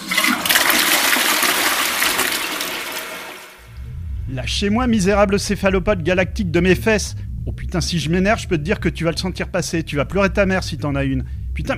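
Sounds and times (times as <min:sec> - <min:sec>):
toilet flushing: 0:00.0 - 0:03.7
speech: 0:04.3 - 0:11.7.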